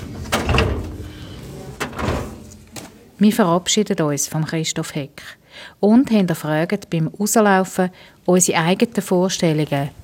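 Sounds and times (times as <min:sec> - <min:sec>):
metal hanging-file drawer in an office rolling and bumping shut: 0:00.0 - 0:02.8
speech: 0:03.2 - 0:10.0.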